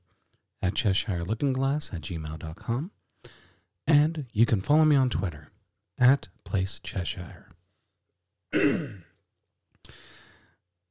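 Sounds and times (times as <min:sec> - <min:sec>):
speech: 0:00.7 - 0:07.5
raspy throat clearing: 0:08.5 - 0:09.2
breathy hissing exhale: 0:09.9 - 0:10.6.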